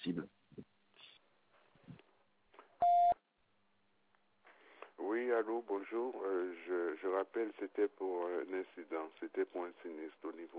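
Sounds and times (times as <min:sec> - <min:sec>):
voicemail beep: 0:02.8 - 0:03.2
speech: 0:05.7 - 0:10.5.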